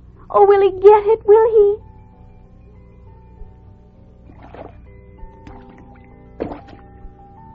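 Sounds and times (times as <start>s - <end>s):
steady soft tonal background: 0.0s - 7.5s
speech: 0.3s - 1.8s
frog splashing and diving into water: 4.2s - 7.0s.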